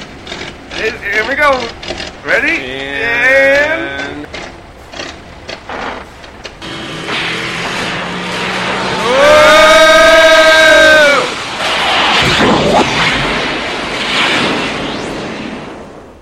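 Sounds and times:
van engine straining as it accelerates: 0.0 - 12.0
steady road rumble: 0.0 - 16.2
speech: 0.8 - 4.4.

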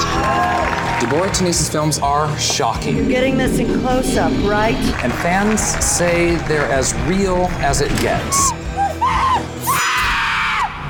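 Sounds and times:
speech: 1.0 - 8.6
low rumbling background: 2.3 - 8.6
person screaming: 8.8 - 10.7.

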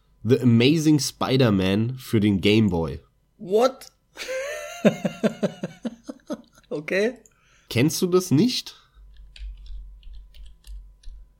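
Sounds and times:
low hum: 0.0 - 11.3
speech: 0.2 - 8.8
laughter: 4.2 - 6.7
typing on a computer keyboard: 9.0 - 11.2.

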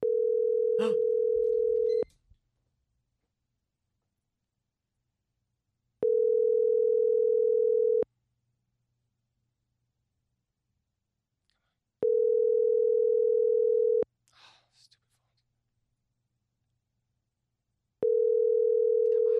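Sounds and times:
outgoing telephone call ringback tone: 0.0 - 2.0, 6.0 - 8.0, 12.0 - 14.0, 18.0 - 19.3.

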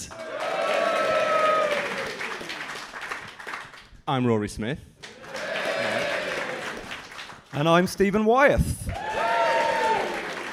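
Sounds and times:
crowd applauding loudly: 0.0 - 3.9, 5.0 - 7.8, 8.9 - 10.5
cheers and whoops: 0.1 - 2.6, 5.2 - 6.9, 8.9 - 10.5
speech: 4.1 - 4.9, 7.6 - 8.9.

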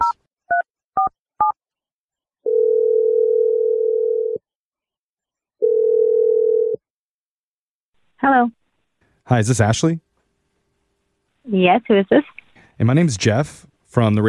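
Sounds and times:
telephone ringing tone: 2.4 - 4.4, 5.6 - 6.8
speech: 8.2 - 8.6, 9.3 - 10.1, 11.4 - 14.2.

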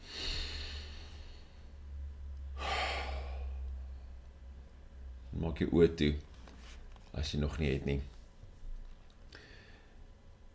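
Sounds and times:
deep breath: 0.0 - 1.8, 2.5 - 4.2, 9.3 - 10.1
steady low hum: 0.0 - 10.5
speech: 5.4 - 6.3, 7.2 - 8.2.

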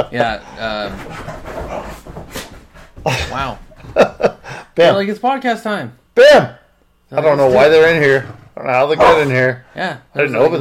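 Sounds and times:
speech: 0.0 - 2.0, 3.0 - 10.5
dogs growling while play-fighting: 0.0 - 3.4, 7.4 - 9.5
dogs panting and snuffling: 0.2 - 3.1.

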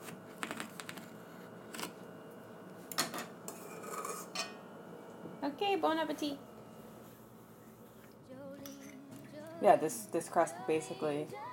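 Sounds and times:
cutlery clinking and scraping while slicing a meringue pie: 3.0 - 4.6
speech: 5.6 - 6.5, 9.6 - 11.5.

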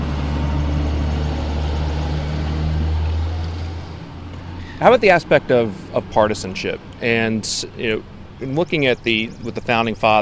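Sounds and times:
large bus engine rumbling past: 0.0 - 10.1
speech: 4.8 - 10.1.

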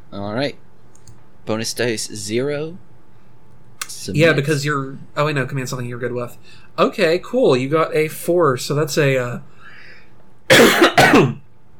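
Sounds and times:
low hum: 0.0 - 11.7
speech: 0.2 - 0.6, 1.5 - 2.9, 4.0 - 9.5, 10.5 - 11.4
person coughing: 10.5 - 11.4.

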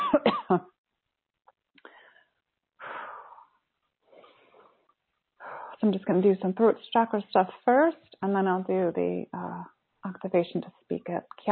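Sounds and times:
person coughing: 0.0 - 0.6
speech: 0.2 - 0.7, 5.8 - 11.5.

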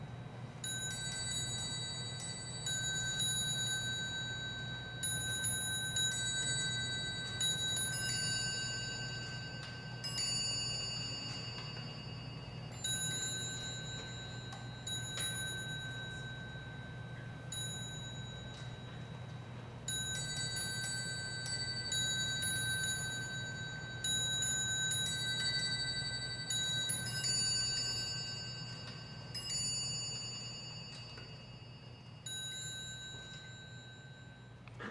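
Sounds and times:
clock bells chiming fast, run by oversized replacement springs: 0.0 - 34.8
steady low hum: 0.0 - 34.8.

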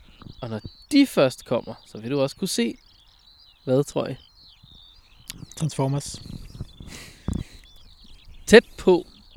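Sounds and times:
faint birdsong outdoors: 0.0 - 9.3
soft low thuds: 0.0 - 9.3
speech: 0.4 - 2.8, 3.6 - 4.3, 5.3 - 7.0, 8.5 - 9.1.

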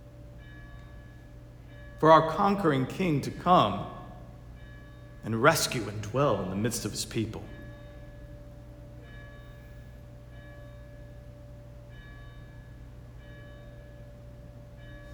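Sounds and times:
church bell ringing: 0.0 - 15.1
speech: 2.0 - 4.0, 5.2 - 7.6.

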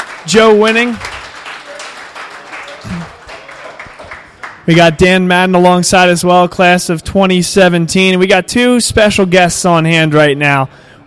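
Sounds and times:
large crowd applauding: 0.0 - 4.7
speech: 0.2 - 1.1, 4.7 - 11.0
faint voices murmuring: 1.6 - 4.0.

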